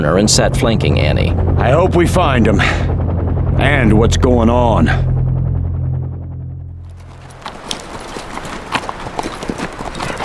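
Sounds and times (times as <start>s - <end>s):
speech: 0.0s - 2.9s, 3.6s - 5.1s
low droning rumble: 0.0s - 8.2s
hooves of a stocky little gray Asian horse clip-clopping: 6.8s - 10.2s.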